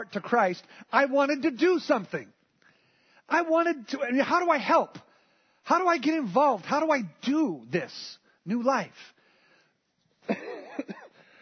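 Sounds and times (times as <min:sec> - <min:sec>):
speech: 0:00.0 - 0:02.4, 0:03.3 - 0:09.2, 0:10.3 - 0:10.9
person coughing: 0:10.2 - 0:11.4.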